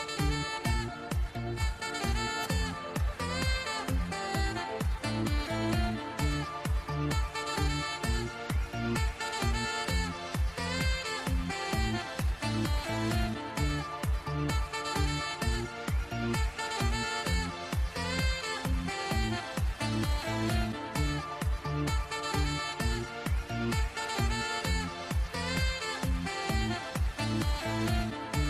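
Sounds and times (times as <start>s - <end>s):
epic saxophone playing: 0.0s - 28.4s.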